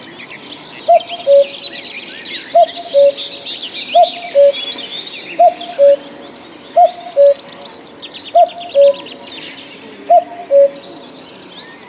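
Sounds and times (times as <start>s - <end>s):
soft twittering from other birds: 0.0s - 11.8s
cuckoo giving cu-coo pairs: 0.9s - 1.8s, 2.4s - 6.2s, 6.8s - 7.6s, 8.3s - 9.4s, 10.1s - 10.9s.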